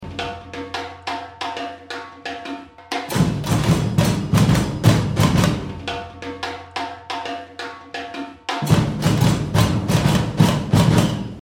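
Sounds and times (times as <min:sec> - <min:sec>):
groove break: 0:02.8 - 0:06.8, 0:08.2 - 0:11.3.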